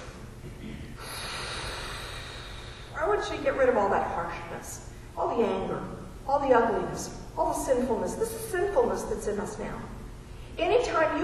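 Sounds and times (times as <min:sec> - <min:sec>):
deep breath drawn in during a calming exercise: 0:01.0 - 0:03.0
speech: 0:03.2 - 0:10.0, 0:10.6 - 0:11.2.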